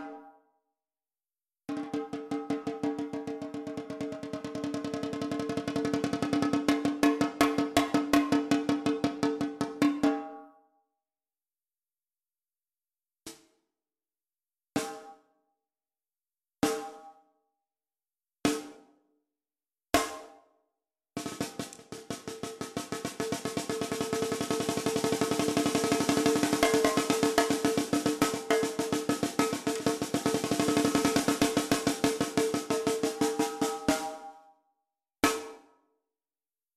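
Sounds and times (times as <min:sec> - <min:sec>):
10x5 maple snare drum: 0:01.7 - 0:10.3, 0:19.9 - 0:20.4, 0:21.2 - 0:34.4, 0:35.3 - 0:35.6.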